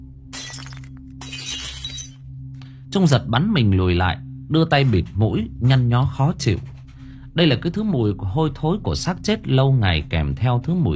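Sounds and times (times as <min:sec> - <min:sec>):
jar dropped and shattering: 0:00.3 - 0:02.2
speech: 0:02.9 - 0:06.8, 0:07.4 - 0:10.9.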